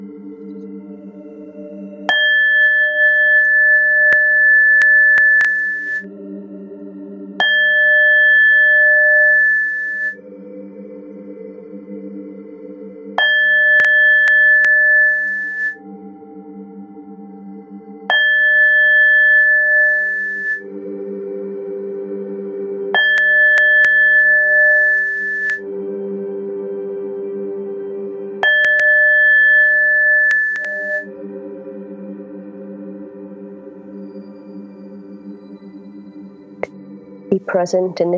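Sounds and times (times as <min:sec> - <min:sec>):
soft continuous low drone: 0:00.0 - 0:38.1
meditation bowl chimes ringing: 0:02.1 - 0:06.1, 0:07.4 - 0:10.2, 0:13.2 - 0:21.0, 0:22.9 - 0:25.6, 0:28.4 - 0:31.2
speech: 0:37.5 - 0:38.1.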